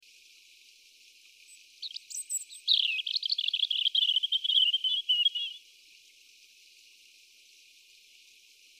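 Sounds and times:
European robin Erithacus rubecula singing warbles and trill: 1.5 - 5.6.

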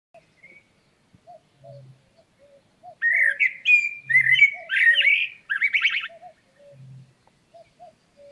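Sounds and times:
Turdus merula common blackbird squeaky warbling notes: 3.0 - 7.0.

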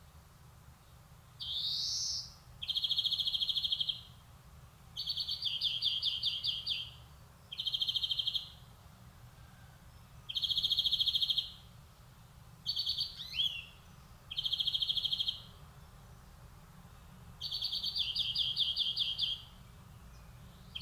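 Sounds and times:
European greenfinch Chloris chloris singing buzzy trilled phrases: 0.8 - 4.2, 5.0 - 8.7, 9.8 - 11.8, 12.6 - 16.4, 17.0 - 20.7.

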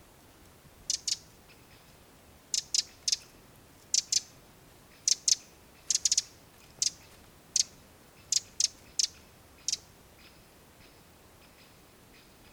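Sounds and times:
Eurasian wren Troglodytes troglodytes hard clicking call ticks: 0.9 - 1.6, 2.5 - 4.3, 5.0 - 10.4.

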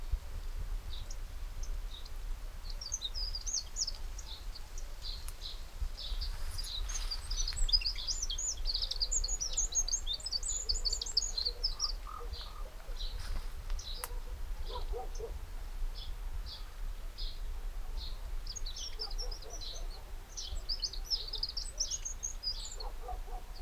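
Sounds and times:
Eurasian wren Troglodytes troglodytes calling: 0.9 - 17.4, 18.0 - 23.5.

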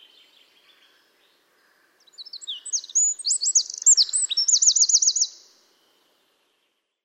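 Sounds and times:
Eurasian wren Troglodytes troglodytes singing: 2.0 - 5.6.

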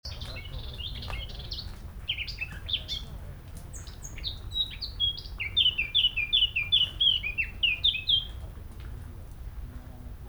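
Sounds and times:
Eurasian blackcap song with scratchy chattering and fluty notes: 0.1 - 3.1, 3.7 - 8.4.

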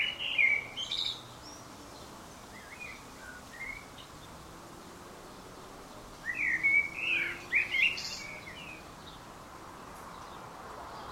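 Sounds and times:
common blackbird Turdus merula twittering: 0.0 - 1.6, 2.5 - 4.4, 6.2 - 9.2.

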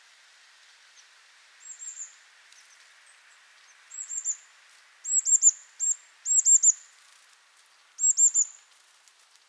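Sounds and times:
faint background hiss: 0.0 - 9.4
Eurasian blue tit Cyanistes caeruleus high thin calls: 3.9 - 4.4, 5.0 - 6.8, 8.0 - 8.5.

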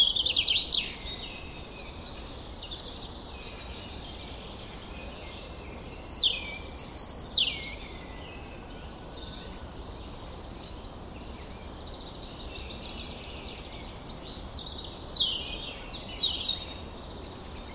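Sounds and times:
European robin singing: 0.0 - 17.7.

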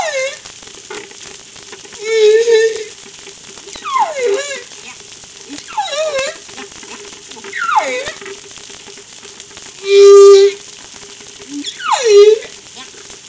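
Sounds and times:
whale vocalizing with tonal wavering moans and whistles: 0.0 - 0.5, 2.0 - 3.0, 3.7 - 4.9, 5.5 - 6.7, 7.3 - 8.4, 9.8 - 10.6, 11.5 - 13.0
faint crackling background: 0.0 - 13.2.

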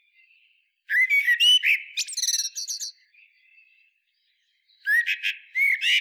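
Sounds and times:
Eurasian blackbird Turdus merula song: 0.0 - 6.0.

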